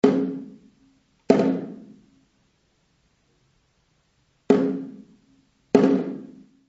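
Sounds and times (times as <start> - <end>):
magnetic drum: 0.0 - 0.7, 1.3 - 2.0, 4.5 - 6.5.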